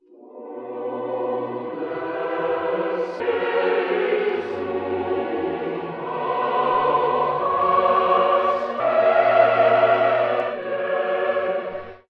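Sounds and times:
sad choir voice loop singing nonsense: 0.0 - 12.0.

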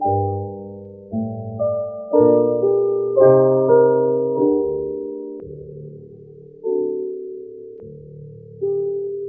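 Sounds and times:
sad piano loop: 0.0 - 9.2.

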